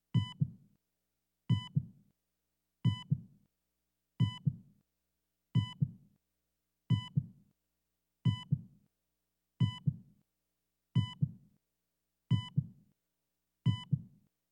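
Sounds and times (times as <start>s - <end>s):
heartbeat monitor beeping slowly: 0.2s - 0.5s, 1.5s - 1.8s, 2.9s - 3.2s, 4.2s - 4.5s, 5.6s - 5.9s, 6.9s - 7.2s, 8.3s - 8.6s, 9.6s - 10.0s, 11.0s - 11.3s, 12.3s - 12.7s, 13.7s - 14.0s.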